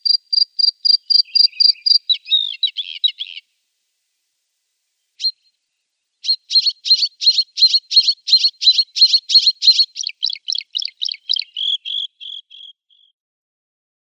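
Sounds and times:
bluethroat singing ringing and twanging notes: 1.0s - 3.4s, 6.2s - 13.1s.

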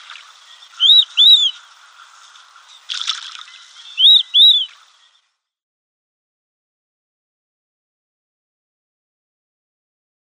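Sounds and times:
female marbled teal squeaky calls: 0.4s - 1.6s, 2.7s - 5.2s.

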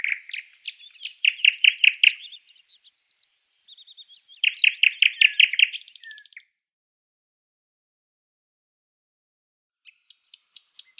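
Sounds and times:
thrush nightingale song with dry pulsing rattle and faint whistle: 0.0s - 6.6s, 9.9s - 10.9s.

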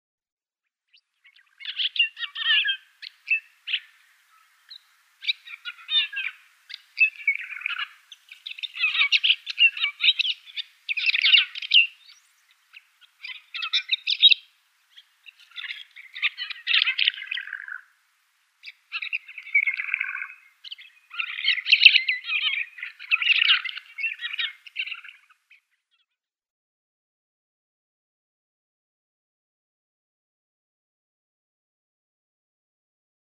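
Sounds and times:
Banded Martin song: 0.9s - 18.0s, 18.6s - 26.2s.

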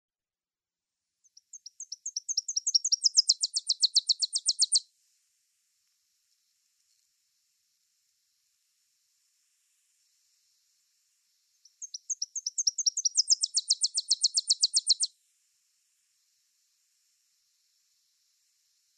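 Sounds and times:
Tennessee warbler singing: 1.3s - 4.8s, 11.6s - 15.1s.

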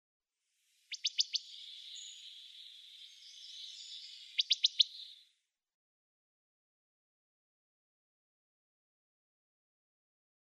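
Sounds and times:
Wood Thrush calls: 0.8s - 5.2s.

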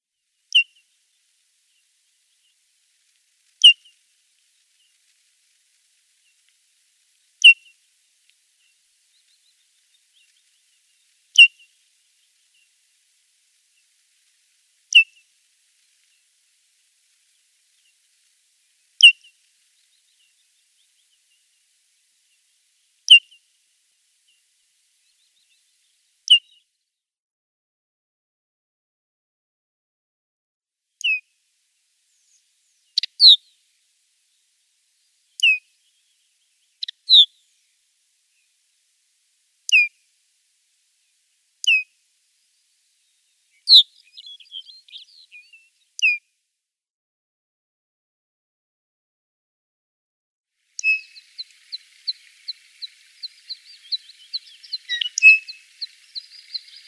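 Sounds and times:
Lapland Longspur calls: 0.5s - 0.8s, 3.6s - 4.0s, 7.4s - 7.8s, 14.9s - 15.2s, 19.0s - 21.4s, 31.0s - 31.2s, 32.1s - 33.5s, 35.4s - 37.4s, 39.7s - 39.9s, 41.6s - 41.9s, 43.5s - 46.2s, 50.8s - 56.8s.

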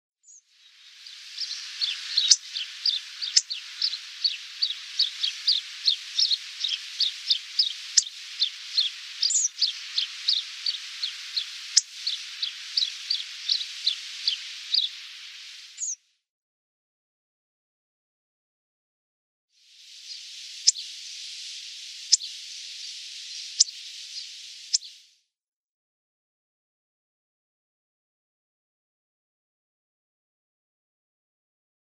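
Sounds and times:
Hawfinch calls: 0.6s - 16.0s, 19.8s - 25.0s.

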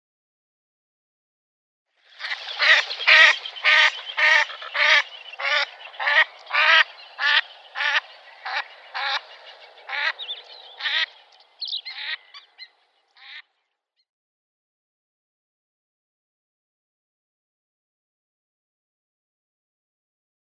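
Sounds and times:
female Cape teal flight call: 2.1s - 12.7s.

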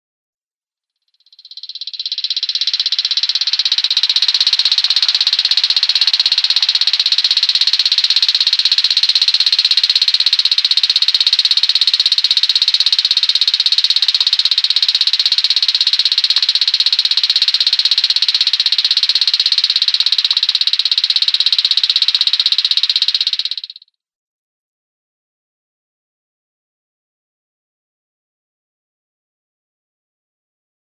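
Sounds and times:
Striped Crake display call: 1.2s - 23.8s.

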